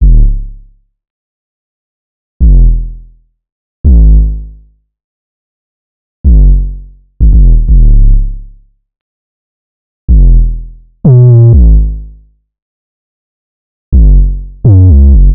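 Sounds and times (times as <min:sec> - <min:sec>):
synth bass loop in G sharp minor: 0:00.0 - 0:00.5, 0:02.4 - 0:03.0, 0:06.3 - 0:08.3, 0:10.1 - 0:12.1, 0:14.0 - 0:15.3.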